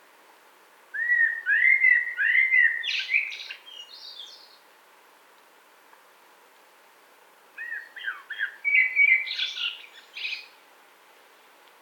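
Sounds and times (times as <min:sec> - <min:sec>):
common blackbird song: 0:01.0 - 0:04.6, 0:07.6 - 0:10.6.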